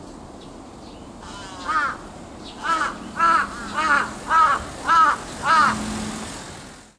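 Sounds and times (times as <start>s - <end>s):
large-billed crow giving hoarse throaty caws: 1.2s - 5.9s.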